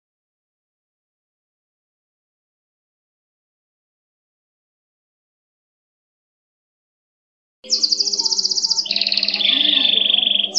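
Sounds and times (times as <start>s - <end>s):
canary song trill: 7.7s - 10.5s.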